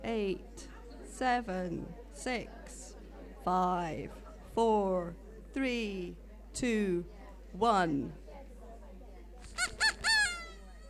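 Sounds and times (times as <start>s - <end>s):
speech: 0.0s - 2.8s, 3.4s - 8.2s
squeaky duck toy squeaking: 9.6s - 10.6s.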